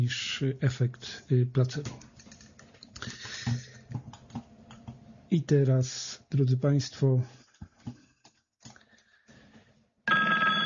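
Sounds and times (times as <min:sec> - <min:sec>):
speech: 0:00.0 - 0:02.1, 0:05.3 - 0:07.4
telephone ringing: 0:10.1 - 0:10.6.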